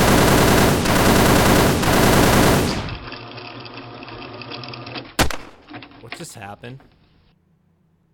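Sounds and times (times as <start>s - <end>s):
automatic gunfire sound effect: 0.0s - 3.1s, 5.2s - 5.6s
single sharp gunshot: 5.2s - 5.6s
speech: 6.4s - 7.0s.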